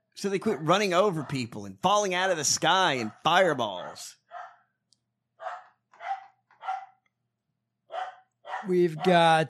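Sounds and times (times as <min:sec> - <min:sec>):
speech: 0:00.2 - 0:04.2, 0:08.6 - 0:09.4
dog barking at the door: 0:00.4 - 0:01.5, 0:03.0 - 0:04.7, 0:05.4 - 0:07.1, 0:07.9 - 0:09.3.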